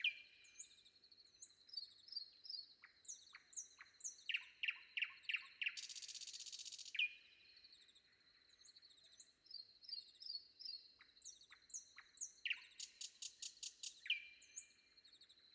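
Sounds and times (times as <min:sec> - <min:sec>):
Common Nightingale singing before dawn: 0:00.0 - 0:15.5.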